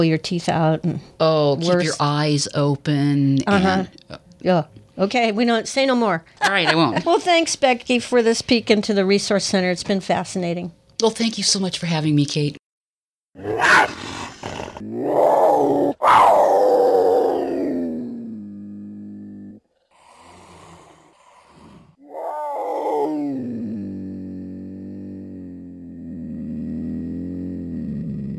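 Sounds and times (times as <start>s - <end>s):
speech: 0.0s - 12.6s, 13.4s - 14.0s, 14.8s - 17.1s
cougar growling, snarling and yowling: 13.4s - 28.3s.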